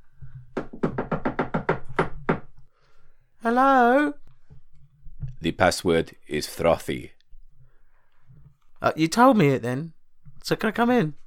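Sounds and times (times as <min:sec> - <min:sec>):
rhythmic patterned knock on a door: 0:00.5 - 0:02.6
speech: 0:03.4 - 0:04.2, 0:05.4 - 0:07.2, 0:08.8 - 0:11.2.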